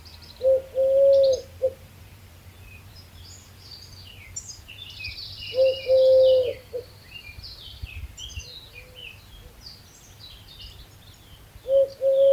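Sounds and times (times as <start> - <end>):
other birds chirping higher: 0.0 - 12.3
Eurasian Collared Dove cooing a low three-part coo: 0.4 - 1.8, 5.5 - 6.9, 11.6 - 12.3.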